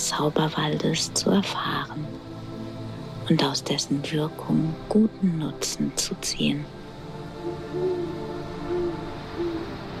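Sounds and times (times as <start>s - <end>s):
quiet hum: 0.0s - 9.9s
speech: 0.1s - 2.7s, 3.3s - 6.8s, 7.7s - 8.2s
owl hooting: 7.3s - 9.9s.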